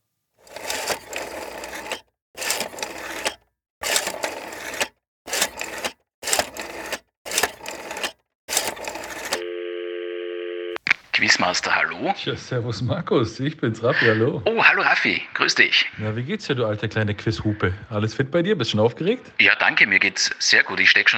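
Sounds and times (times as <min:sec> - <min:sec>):
telephone ringing in buzzy bursts: 0:00.4 - 0:10.8
speech: 0:11.2 - 0:21.1.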